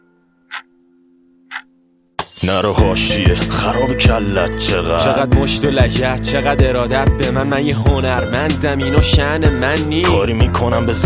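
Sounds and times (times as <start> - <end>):
clock ticking: 0.5 - 0.8, 1.4 - 2.4
rap song: 2.2 - 11.0
speech: 2.4 - 11.0.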